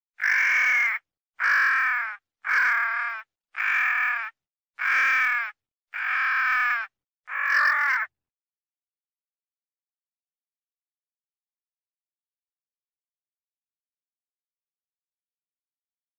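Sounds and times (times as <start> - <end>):
crow cawing while fighting: 0.2 - 8.1.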